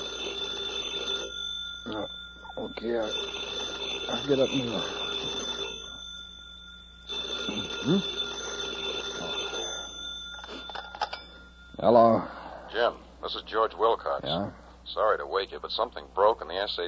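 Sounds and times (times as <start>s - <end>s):
telephone ringing in long bright trilling bursts: 0.0s - 12.9s
speech: 1.9s - 5.4s, 7.8s - 8.2s, 11.8s - 16.8s
drowsy voice mumbling: 7.5s - 8.1s, 14.2s - 14.6s.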